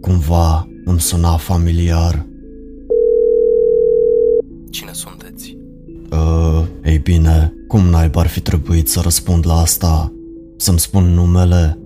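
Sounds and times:
speech: 0:00.0 - 0:02.3, 0:04.7 - 0:11.8
telephone ringback tone during a call: 0:02.9 - 0:04.4.

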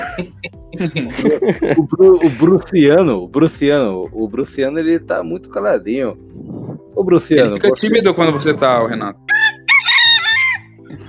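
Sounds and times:
laughter: 0:00.0 - 0:02.6
speech: 0:00.2 - 0:06.3, 0:07.0 - 0:09.3
rooster crowing: 0:09.3 - 0:10.8.

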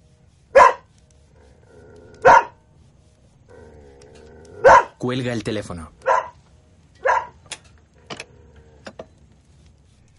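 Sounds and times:
faint low hum: 0:00.0 - 0:10.1
dog barking: 0:00.5 - 0:00.9, 0:02.2 - 0:02.6, 0:04.6 - 0:05.0, 0:06.0 - 0:06.4, 0:07.0 - 0:07.4
speech: 0:05.0 - 0:06.0.

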